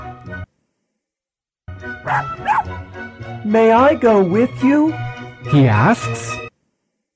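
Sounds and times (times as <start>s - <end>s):
dog barking: 2.0s - 2.9s
speech: 2.0s - 6.4s.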